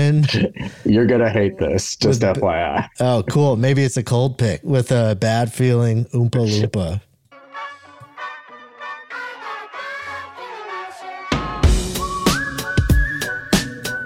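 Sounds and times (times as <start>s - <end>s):
speech: 0.1s - 7.1s
whistled melody over soft backing: 8.2s - 14.0s
full band with drums playing: 11.4s - 13.7s
long high whistled note: 11.4s - 14.0s.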